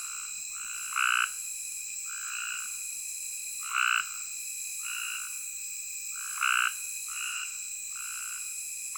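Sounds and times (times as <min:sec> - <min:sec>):
Cope's gray tree frog chorus in thick vegetation in a dry ditch near a prairie campground: 0:00.0 - 0:01.4, 0:02.0 - 0:02.8, 0:03.6 - 0:05.5, 0:06.1 - 0:08.9
steady insect drone: 0:00.0 - 0:08.9.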